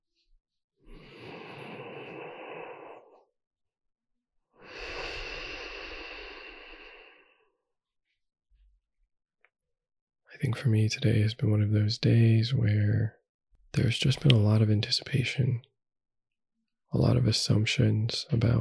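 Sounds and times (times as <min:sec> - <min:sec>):
deep breath: 0:00.9 - 0:03.3, 0:04.6 - 0:07.6
speech: 0:10.4 - 0:13.2, 0:13.8 - 0:15.7, 0:16.9 - 0:18.6.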